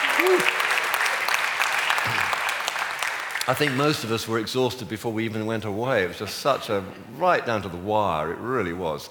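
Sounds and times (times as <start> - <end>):
large crowd applauding in a room: 0.0 - 4.3
speech: 0.2 - 0.6, 3.5 - 9.0.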